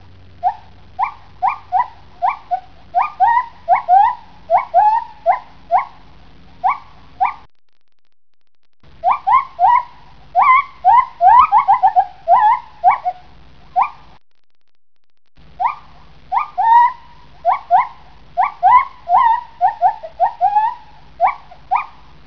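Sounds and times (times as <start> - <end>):
male gibbons calling: 0.4 - 6.0, 6.6 - 7.4, 9.0 - 14.0, 15.6 - 22.1.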